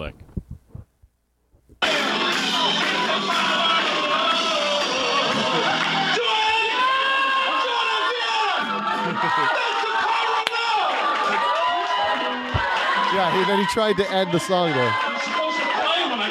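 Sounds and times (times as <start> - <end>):
speech: 0.0 - 0.2, 13.2 - 15.0
three-piece band's backing track: 1.8 - 6.8
large concert crowd cheering and screaming: 1.8 - 16.2
laughter: 5.1 - 6.0, 8.6 - 10.4.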